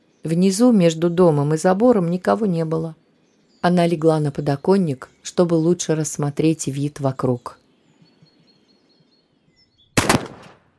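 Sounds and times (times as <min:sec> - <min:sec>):
speech: 0:00.2 - 0:03.0, 0:03.6 - 0:07.6
gunshot: 0:10.0 - 0:10.7.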